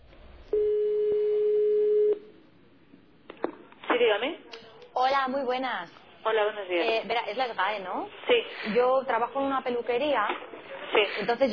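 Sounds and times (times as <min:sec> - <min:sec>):
telephone line tone while a call is placed: 0:00.5 - 0:02.2
speech: 0:05.1 - 0:11.5.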